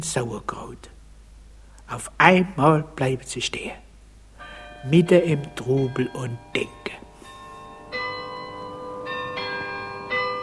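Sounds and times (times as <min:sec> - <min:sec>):
speech: 0:00.0 - 0:01.0, 0:01.9 - 0:03.8, 0:04.8 - 0:07.0
carillon bells chiming from a town hall tower: 0:04.4 - 0:10.4.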